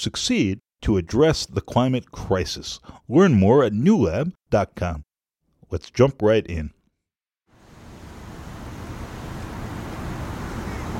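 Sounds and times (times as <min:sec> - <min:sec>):
speech: 0:00.0 - 0:05.1, 0:05.7 - 0:06.8
strong wind over canal water: 0:07.7 - 0:10.9.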